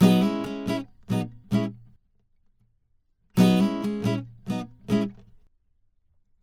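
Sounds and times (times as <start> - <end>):
pop rock acoustic guitar playing in C sharp minor: 0.0 - 2.0, 3.4 - 5.4.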